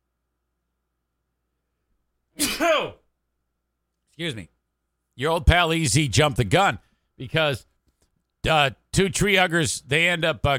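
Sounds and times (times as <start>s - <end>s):
person sneezing: 2.4s - 3.1s
speech: 4.2s - 4.6s, 5.2s - 7.7s, 8.4s - 10.5s.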